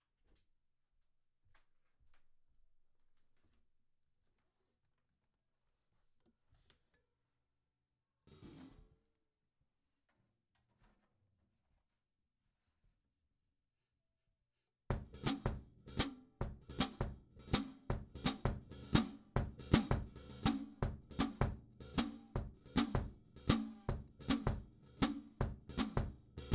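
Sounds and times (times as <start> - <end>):
percussion intro hi-hat: 16.7 - 26.5.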